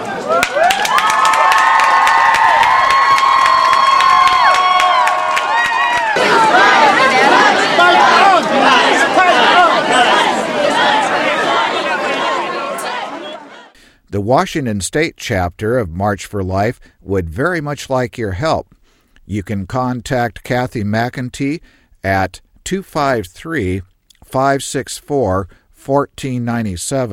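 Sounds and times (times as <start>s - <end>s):
big rally crowd cheering and chattering in the rain: 0.0s - 13.8s
sharp claps: 0.4s - 6.2s
speech: 14.3s - 27.1s.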